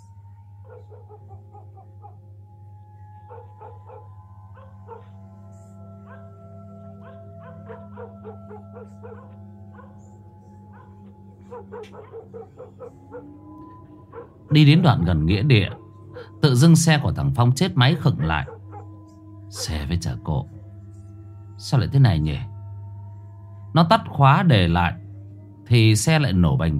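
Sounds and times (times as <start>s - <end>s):
village dogs barking on a deserted village road: 0.6s - 2.3s, 3.1s - 20.3s
speech: 0.9s - 2.5s, 3.3s - 6.8s, 8.8s - 9.5s, 11.5s - 15.8s, 16.4s - 18.6s, 19.5s - 20.6s, 21.6s - 22.5s, 23.7s - 25.0s, 25.7s - 26.7s.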